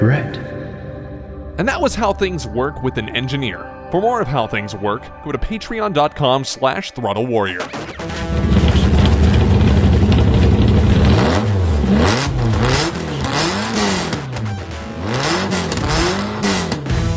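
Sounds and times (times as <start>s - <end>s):
speech: 0.0s - 0.5s, 1.6s - 8.4s
TVR Cerbera sports car engine revving: 7.8s - 17.1s.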